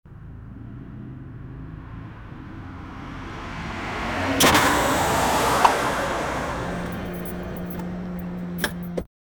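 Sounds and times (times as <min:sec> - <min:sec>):
car crashes: 0:03.2 - 0:09.1.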